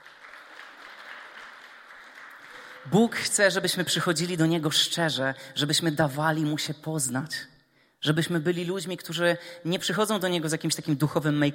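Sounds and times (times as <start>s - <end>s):
audience applause during a church talk: 0.0s - 3.0s
speech: 2.8s - 11.5s.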